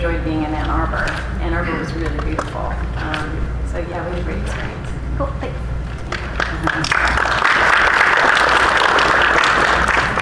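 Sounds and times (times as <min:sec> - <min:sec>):
speech: 0:00.1 - 0:05.8
audience applause: 0:06.0 - 0:10.2.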